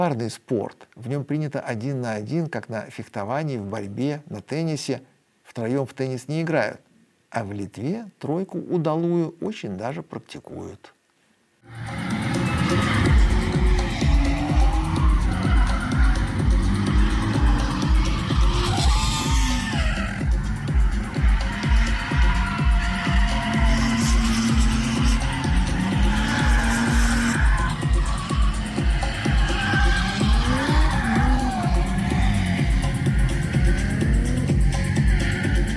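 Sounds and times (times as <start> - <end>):
speech: 0.0 - 11.0, 11.6 - 12.1
drifting cars' engines revving at a kart track: 11.7 - 35.7
drifting cars' tires squealing and skidding at a kart track: 11.7 - 35.7.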